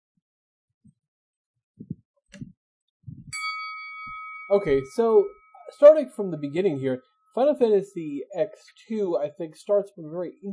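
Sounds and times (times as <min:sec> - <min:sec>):
soft low thumps: 0:01.8 - 0:03.4, 0:04.6 - 0:05.0
bell ding: 0:03.3 - 0:07.5
speech: 0:04.5 - 0:10.5.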